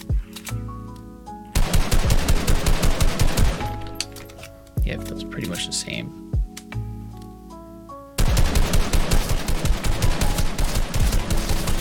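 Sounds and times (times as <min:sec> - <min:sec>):
steady tonal video game background: 0:00.0 - 0:11.7
rapid automatic video game gunfire: 0:01.6 - 0:03.7, 0:08.2 - 0:11.7
speech: 0:04.9 - 0:06.3.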